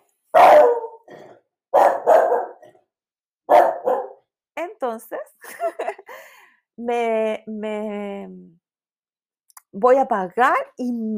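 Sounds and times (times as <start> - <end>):
dog barking: 0.3 - 1.1, 1.7 - 2.7, 3.5 - 4.3
speech: 5.0 - 6.1, 6.8 - 8.6, 9.7 - 11.1
laughter: 5.5 - 6.1.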